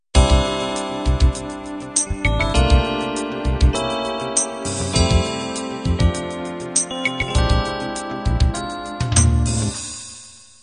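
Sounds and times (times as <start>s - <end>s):
slow ballad intro: 0.2s - 9.8s.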